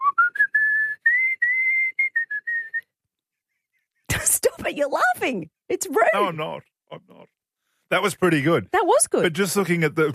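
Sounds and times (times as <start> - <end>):
person whistling a short melodic tune: 0.0 - 3.0
speech: 4.3 - 10.1.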